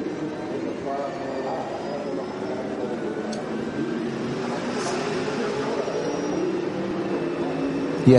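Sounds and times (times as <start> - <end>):
onboard racing car engine droning at reduced revs: 0.0 - 8.1
road noise: 0.0 - 8.1.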